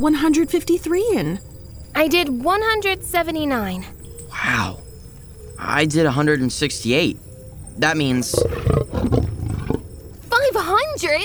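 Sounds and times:
speech: 0:00.0 - 0:04.8, 0:05.6 - 0:08.8
lion roaring: 0:08.0 - 0:10.3.

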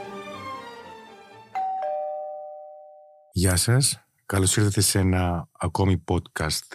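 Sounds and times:
doorbell chiming: 0:01.5 - 0:03.3
speech: 0:03.4 - 0:06.7.

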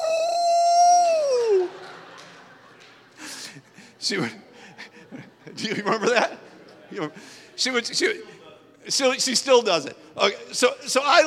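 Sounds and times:
person imitating a wolf howl: 0:00.0 - 0:01.8
faint noise: 0:00.0 - 0:11.2
laughter: 0:01.2 - 0:08.4
speech: 0:04.0 - 0:04.5, 0:05.1 - 0:11.2.

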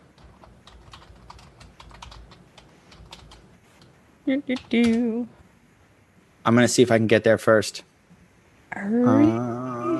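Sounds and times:
typing on a computer keyboard: 0:00.2 - 0:03.4
speech: 0:04.2 - 0:05.4, 0:06.4 - 0:07.9.

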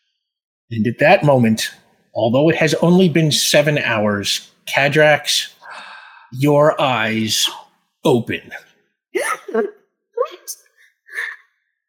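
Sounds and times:
speech: 0:00.7 - 0:05.6, 0:06.3 - 0:10.6
person acting out gasping for air: 0:05.6 - 0:06.4.

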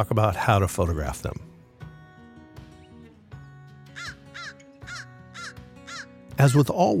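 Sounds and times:
speech: 0:00.0 - 0:01.5, 0:06.4 - 0:06.9
crow cawing: 0:03.8 - 0:06.2.

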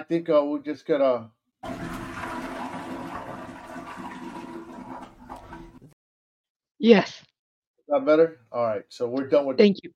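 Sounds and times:
speech: 0:00.0 - 0:02.0, 0:06.8 - 0:07.3, 0:07.9 - 0:09.9
toilet flushing: 0:01.6 - 0:06.0.

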